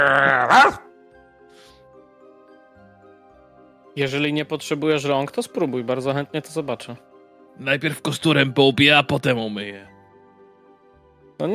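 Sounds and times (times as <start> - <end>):
speech: 0.0 - 0.8, 4.0 - 9.9
dog groaning whine with wavering pitch: 0.0 - 0.9.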